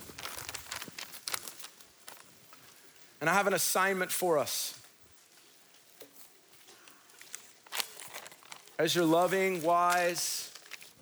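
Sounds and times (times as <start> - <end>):
many sheets of paper rustling and crinkling as an audience handles them: 0.0 - 2.6, 6.2 - 11.0
speech: 3.2 - 4.8, 8.8 - 10.5.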